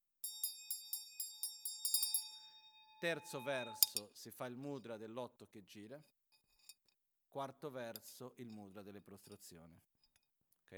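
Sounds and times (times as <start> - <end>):
Tibetan ritual hand bell rung during a chanted recitation: 0.2 - 4.0
speech: 3.0 - 6.2, 7.3 - 9.9.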